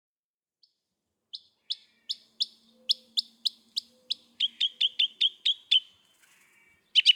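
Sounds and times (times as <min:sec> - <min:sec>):
Northern mockingbird song: 0:00.6 - 0:07.1.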